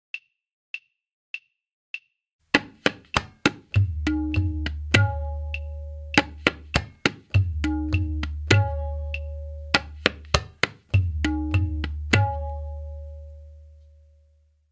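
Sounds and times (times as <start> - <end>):
tihai damdar click: 3.2 - 12.6.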